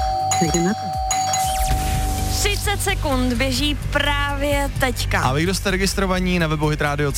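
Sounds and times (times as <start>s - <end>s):
doorbell at a front door chiming: 0.0s - 2.3s
speech: 0.4s - 1.0s, 2.4s - 7.1s.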